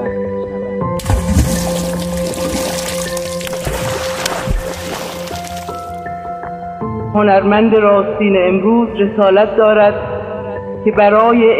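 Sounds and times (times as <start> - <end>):
steady broadband rush of flowing water: 1.0 - 6.0
speech: 7.2 - 10.1, 10.8 - 11.5.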